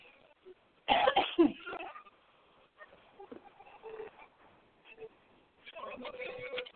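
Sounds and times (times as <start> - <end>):
person coughing from choking on French bread pizza: 0.9 - 2.0.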